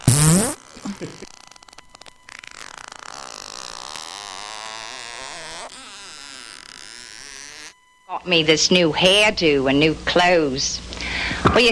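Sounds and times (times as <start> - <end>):
loud sputtering fart: 0.0 - 7.7
speech: 1.0 - 1.3, 8.2 - 11.7.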